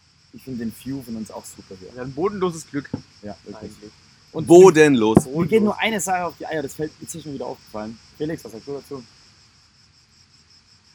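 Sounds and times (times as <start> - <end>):
chorus of crickets chirping: 0.0 - 10.9
low ambient rumble: 0.4 - 8.6
speech: 0.4 - 9.2.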